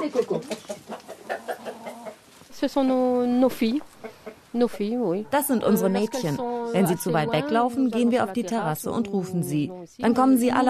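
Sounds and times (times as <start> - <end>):
speech: 0.0 - 1.0, 2.6 - 3.9, 4.5 - 10.6
pet hens clucking: 0.0 - 7.7.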